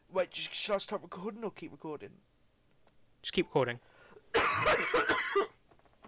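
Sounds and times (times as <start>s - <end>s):
speech: 0.2s - 2.3s, 3.2s - 4.0s
harsh raspy coughs: 4.3s - 5.6s.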